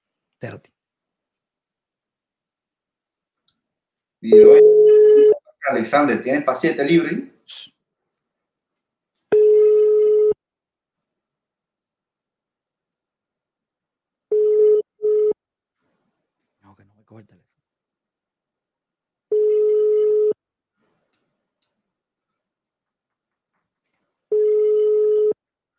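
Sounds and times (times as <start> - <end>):
speech: 0.4 - 0.8, 4.2 - 4.8, 5.6 - 7.8, 17.1 - 17.4
phone line ringback tone, unanswered: 4.3 - 5.4, 9.3 - 10.4, 14.3 - 15.4, 19.3 - 20.4, 24.3 - 25.4.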